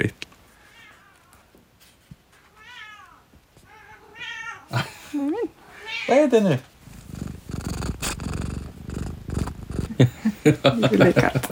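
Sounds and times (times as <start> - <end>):
laughter: 4.7 - 5.3, 9.9 - 11.4
cat purring: 5.9 - 11.4
speech: 6.1 - 6.7, 10.4 - 11.4.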